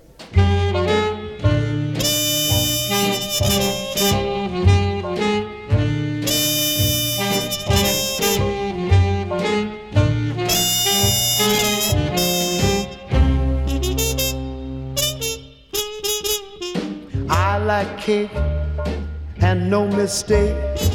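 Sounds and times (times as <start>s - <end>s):
1940s swing-era song recording with brass, saxophone, bass and drums: 0.0s - 20.9s
speech: 20.1s - 20.9s.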